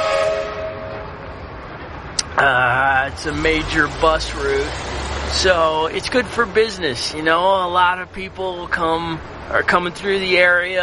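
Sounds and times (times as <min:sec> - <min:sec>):
train horn blaring in a town square: 0:00.0 - 0:01.4
rumbling rail noise of trains passing through a town square: 0:00.0 - 0:10.8
speech: 0:02.4 - 0:10.8.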